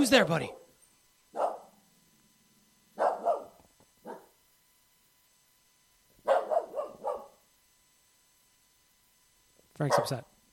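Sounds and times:
speech: 0:00.0 - 0:00.6, 0:09.8 - 0:10.3
dog barking at the window of a house: 0:01.3 - 0:01.8, 0:03.0 - 0:04.4, 0:06.2 - 0:07.4, 0:09.8 - 0:10.3.

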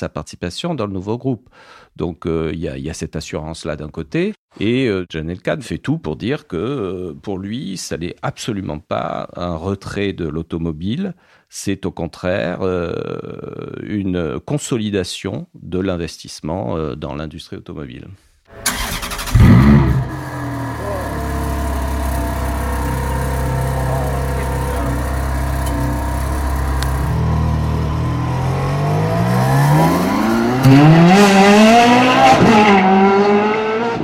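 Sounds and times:
speech: 0:00.0 - 0:18.8
Ferrari Formula 1 race car engine revving: 0:18.6 - 0:34.0.

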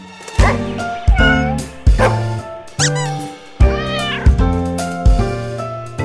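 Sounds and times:
cat meowing: 0:00.4 - 0:04.5.

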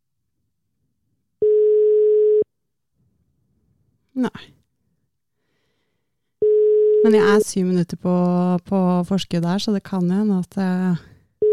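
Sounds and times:
outgoing phone call ringing tone: 0:01.4 - 0:02.5, 0:06.4 - 0:07.5
speech: 0:04.2 - 0:04.6, 0:07.0 - 0:11.1.

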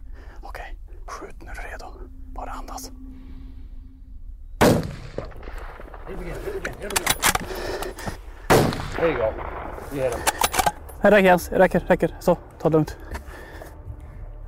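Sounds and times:
hushed whispering voices: 0:00.0 - 0:03.6, 0:06.1 - 0:08.4, 0:09.0 - 0:13.3
rifle shots fired at a bear: 0:04.6 - 0:07.6, 0:08.4 - 0:10.8
speech: 0:06.1 - 0:08.1, 0:09.0 - 0:13.1.

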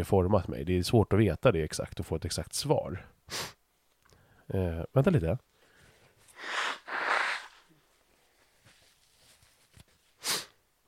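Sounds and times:
speech: 0:00.0 - 0:03.6, 0:04.5 - 0:05.5
person blowing nose: 0:03.3 - 0:03.6, 0:06.3 - 0:07.8, 0:10.2 - 0:10.6.

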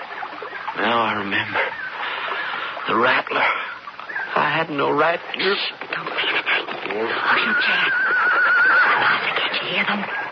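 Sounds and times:
speech: 0:00.8 - 0:01.8, 0:02.9 - 0:03.7, 0:04.5 - 0:06.3, 0:06.9 - 0:10.2
horse whinnying: 0:06.2 - 0:10.0.

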